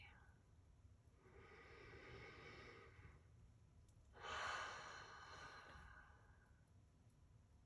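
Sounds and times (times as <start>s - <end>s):
deep slow breathing: 1.2s - 3.3s, 4.2s - 6.5s.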